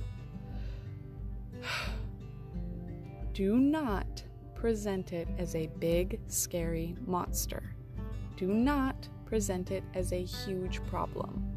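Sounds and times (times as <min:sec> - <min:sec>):
deep inhale: 0:00.4 - 0:02.2
speech: 0:03.4 - 0:07.7, 0:08.4 - 0:11.5.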